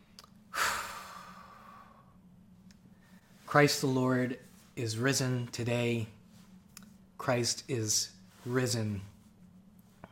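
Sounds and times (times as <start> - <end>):
deep breath: 0.5 - 2.2
speech: 3.5 - 6.2, 7.2 - 9.1.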